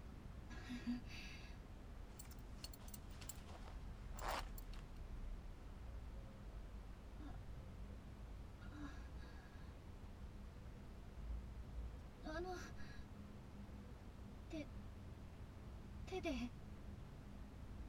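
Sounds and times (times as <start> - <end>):
low steady hum: 0.0 - 17.8
faint rustles: 2.1 - 5.0
zipper being pulled down: 2.2 - 4.8.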